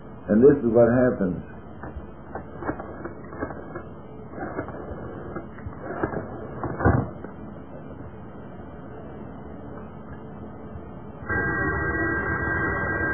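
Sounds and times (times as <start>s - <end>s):
speech: 0.3s - 1.5s
steady louder telephone buzzing tone: 11.2s - 13.1s
telephone ringing over a narrow line: 11.3s - 13.1s.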